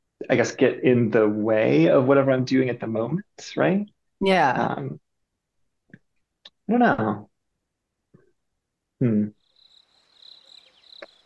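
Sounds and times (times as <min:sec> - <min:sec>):
speech: 0:00.3 - 0:05.0, 0:06.7 - 0:07.3, 0:09.0 - 0:09.4
short vocal sound: 0:09.0 - 0:09.3
cricket chirping sound effect: 0:09.3 - 0:11.2.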